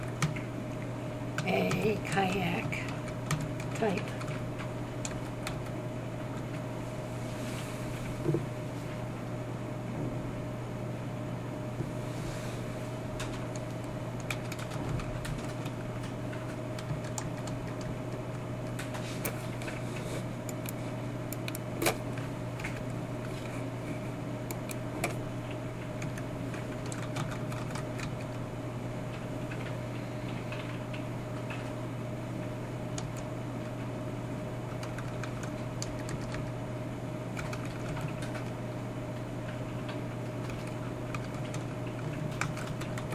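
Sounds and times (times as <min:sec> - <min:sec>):
constant low electrical hum: 0:00.0 - 0:43.1
typing code on a computer keyboard: 0:00.1 - 0:00.5, 0:01.4 - 0:05.8, 0:13.2 - 0:19.0, 0:26.0 - 0:28.4, 0:33.0 - 0:33.2, 0:34.7 - 0:36.6, 0:37.4 - 0:38.6, 0:40.4 - 0:43.1
speech: 0:01.5 - 0:02.9, 0:03.8 - 0:04.2.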